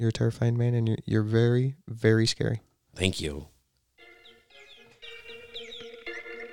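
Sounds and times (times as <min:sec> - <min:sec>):
speech: 0:00.0 - 0:03.5
phone wake-up alarm playing a birdsong tone: 0:04.0 - 0:06.5.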